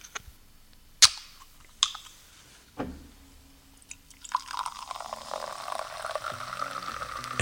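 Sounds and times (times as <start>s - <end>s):
sharp metallic clicks and snaps from a can: 1.0s - 2.2s
canned wine spritzer from Mád poured and fizzing: 3.9s - 7.4s.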